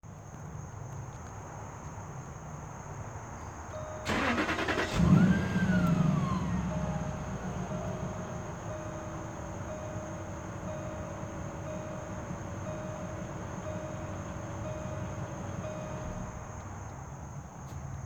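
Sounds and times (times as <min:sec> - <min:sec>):
start-up noise: 0:03.9 - 0:16.5.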